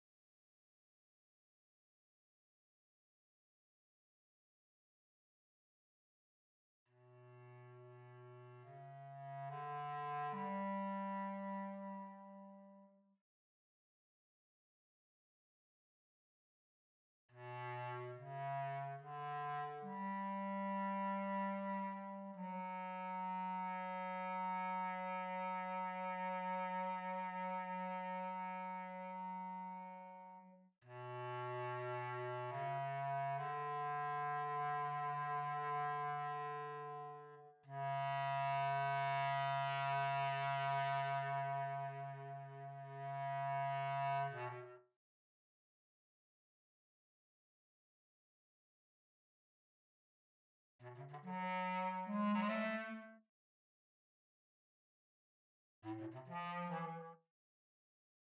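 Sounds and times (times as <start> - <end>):
bass clarinet: 7.0 - 13.0, 17.4 - 44.9, 50.8 - 53.2, 55.8 - 57.3.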